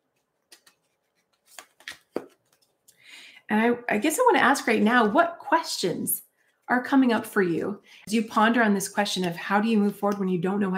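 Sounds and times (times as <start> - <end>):
tea leaf card deck lightly shuffled: 0.1 - 3.0
speech: 3.5 - 10.7.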